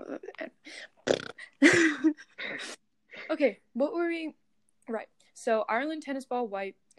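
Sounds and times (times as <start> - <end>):
loud drawn-out burp: 1.0 - 1.4
speech: 3.4 - 6.8.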